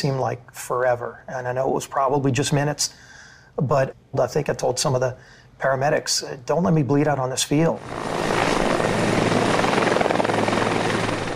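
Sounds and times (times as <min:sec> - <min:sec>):
speech: 0:00.0 - 0:08.4
helicopter rotor chop: 0:07.8 - 0:11.3.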